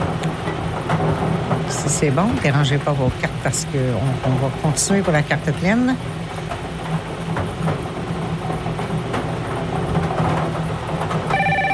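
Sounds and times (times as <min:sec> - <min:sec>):
rumbling noise: 0:00.0 - 0:11.7
speech: 0:01.9 - 0:06.2
telephone ringing: 0:11.3 - 0:11.7.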